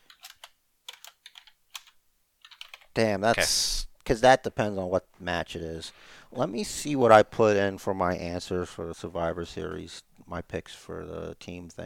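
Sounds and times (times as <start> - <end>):
typing on a computer keyboard: 0.0 - 2.9
speech: 3.0 - 11.8.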